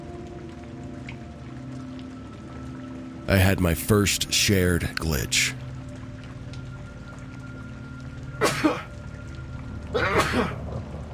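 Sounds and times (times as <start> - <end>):
speech: 3.3 - 5.6
person sneezing: 10.0 - 10.6.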